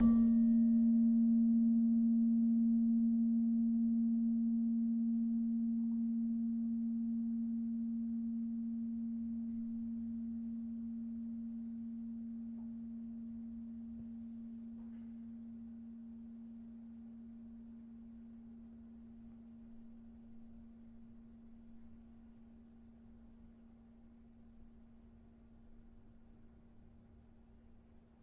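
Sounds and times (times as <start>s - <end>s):
slentem note A sharp: 0.0s - 17.2s.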